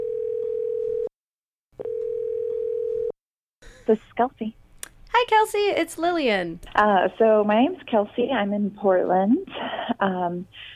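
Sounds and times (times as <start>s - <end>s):
telephone line tone as a call connects: 0.0s - 1.1s, 1.8s - 3.1s
speech: 3.9s - 4.6s, 5.2s - 10.7s.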